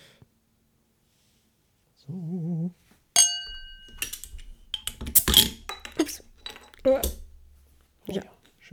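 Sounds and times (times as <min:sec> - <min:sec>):
glass beer bottles clinking at a tasting: 0:03.2 - 0:07.8
speech: 0:08.1 - 0:08.3.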